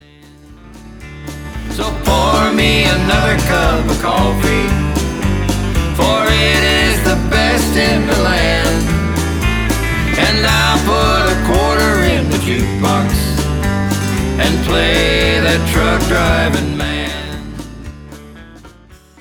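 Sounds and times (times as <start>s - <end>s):
music: 0.0s - 19.2s.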